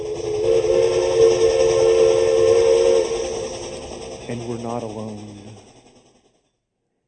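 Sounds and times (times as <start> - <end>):
train whistle blowing: 0.0 - 3.7.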